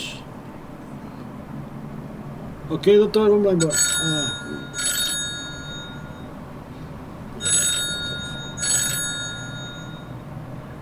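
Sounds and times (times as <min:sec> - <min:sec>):
speech: 0:02.7 - 0:04.8
telephone ringing with electronic trills for a call-back: 0:03.6 - 0:06.4, 0:07.4 - 0:10.2.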